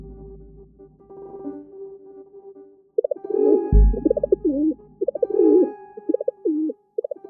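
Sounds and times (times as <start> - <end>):
feral city pigeon cooing: 3.0 - 3.2, 3.9 - 7.2.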